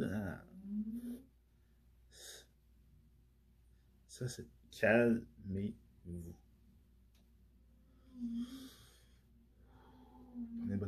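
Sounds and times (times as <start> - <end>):
faint low hum: 0.0 - 10.8
speech: 4.2 - 6.4, 8.2 - 8.8
slow deep calming breath: 7.9 - 10.6.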